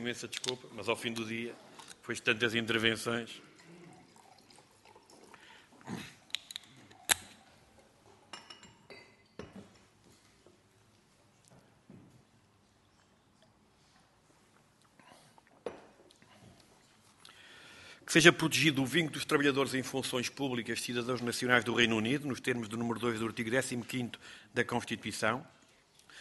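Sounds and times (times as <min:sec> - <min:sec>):
speech: 0:00.0 - 0:03.5, 0:18.2 - 0:25.6
water poured into a drinking glass: 0:02.4 - 0:06.3
sharp clinks of glass: 0:08.3 - 0:09.6.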